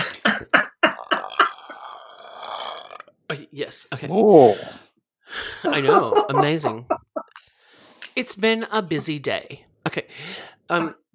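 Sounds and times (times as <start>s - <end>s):
laughter: 0.0s - 1.6s, 5.6s - 7.2s
loud belch: 0.9s - 3.2s
speech: 3.3s - 4.8s, 5.6s - 7.0s, 8.2s - 11.0s.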